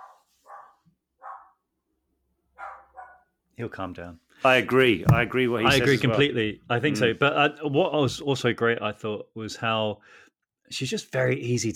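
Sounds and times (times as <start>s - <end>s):
dog barking in short sharp bursts: 0.0s - 1.6s, 2.6s - 3.3s
speech: 3.6s - 11.7s.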